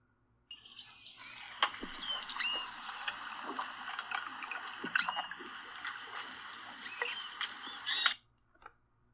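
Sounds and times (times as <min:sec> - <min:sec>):
manatee squeaking, chirping and whistling: 0:00.5 - 0:08.2.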